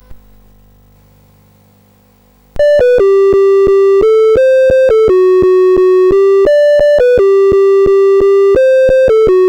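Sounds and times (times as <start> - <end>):
SID chip CSG8580R5 synthesizer sound: 2.6 - 9.4.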